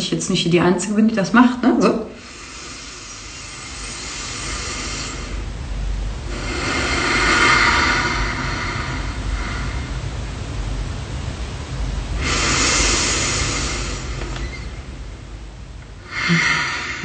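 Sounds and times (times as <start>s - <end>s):
speech: 0.1s - 2.3s
slow belly breathing: 2.2s - 10.8s, 12.1s - 14.9s, 16.0s - 17.0s.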